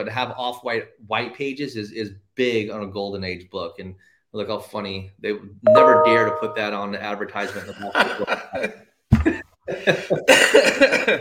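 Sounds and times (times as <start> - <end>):
speech: 0.0 - 11.1
person laughing and coughing: 7.5 - 11.1.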